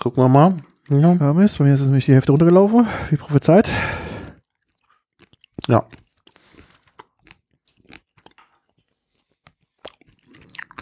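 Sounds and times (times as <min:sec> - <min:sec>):
speech: 0:00.0 - 0:04.0, 0:05.7 - 0:06.0
person chewing whole mustard seeds: 0:04.3 - 0:10.8.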